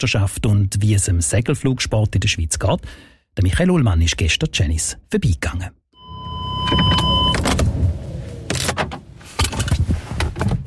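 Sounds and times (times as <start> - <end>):
speech: 0.0 - 5.8, 6.7 - 7.0
brief electronic chime: 6.0 - 7.4
car power window whirring: 6.0 - 9.1
car pulling up with low engine rumble: 6.0 - 10.6
sharp thumps and clicks: 8.4 - 10.6.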